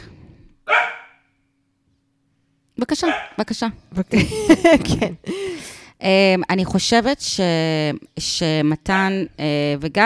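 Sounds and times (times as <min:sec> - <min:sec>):
dog barking: 0:00.7 - 0:01.3, 0:03.0 - 0:03.4
speech: 0:02.8 - 0:05.4, 0:06.0 - 0:10.0
laughter: 0:04.2 - 0:05.2.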